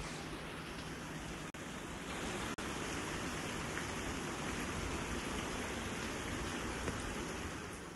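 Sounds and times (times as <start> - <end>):
heavy monsoon rain: 0.0 - 7.9.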